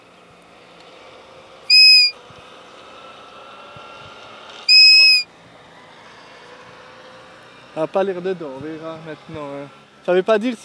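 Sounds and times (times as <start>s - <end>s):
shrill grass-blade whistle calls to call a roe doe at a field edge: 1.7s - 2.1s, 4.7s - 5.3s
speech: 7.8s - 10.6s.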